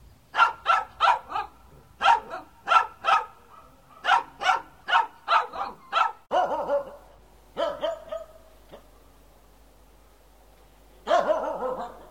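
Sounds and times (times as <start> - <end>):
dog barking: 0.3 - 8.9, 11.0 - 12.1.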